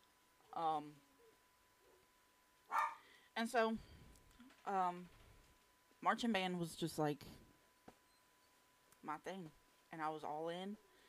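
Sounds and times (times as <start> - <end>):
speech: 0.6 - 1.1, 3.4 - 4.0, 4.6 - 5.2, 6.0 - 7.4, 9.0 - 10.9
dog barking: 2.7 - 3.0.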